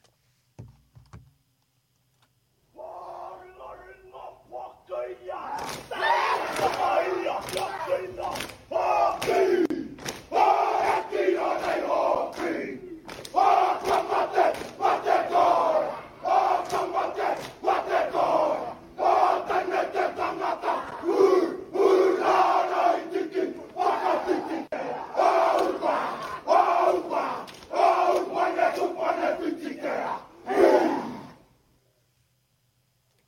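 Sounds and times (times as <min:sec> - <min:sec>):
group of men shouting haka chant in unison: 0:02.8 - 0:31.4
crowd ambience: 0:05.2 - 0:30.0
sharp stomps and slaps of haka performers: 0:05.6 - 0:10.4, 0:11.6 - 0:14.8, 0:16.6 - 0:17.6, 0:27.4 - 0:27.8.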